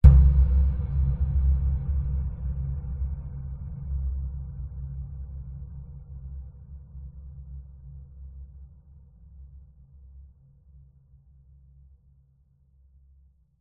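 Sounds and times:
dark reverberant cinematic hit: 0.0s - 5.3s.

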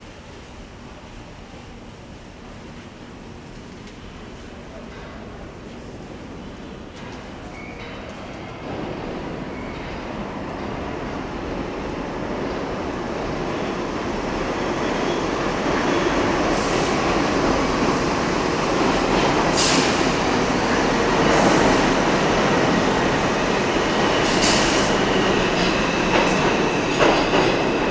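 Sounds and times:
people in a subway train station in NYC: 0.0s - 27.9s
subway trains at a train station in NYC: 0.0s - 27.9s.

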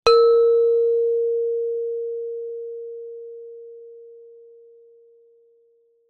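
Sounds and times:
gender gamelan single mallet hit mid low: 0.1s - 1.1s.

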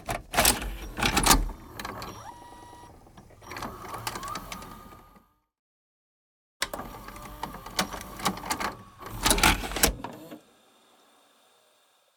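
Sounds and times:
VHS tape machine tape in and out: 0.3s - 5.3s, 6.7s - 10.4s.

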